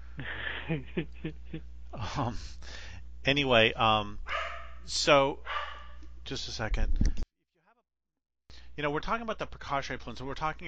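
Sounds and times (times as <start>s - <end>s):
speech: 0.7s - 5.7s, 6.3s - 7.2s, 8.8s - 10.6s
dogs barking at an airplane: 4.2s - 6.2s.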